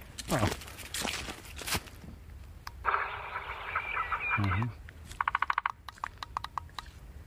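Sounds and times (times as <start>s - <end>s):
tinny recorded birdsong from a small speaker: 2.0s - 6.3s
rapid clicks: 2.6s - 7.0s
scattered knocks: 5.2s - 6.6s.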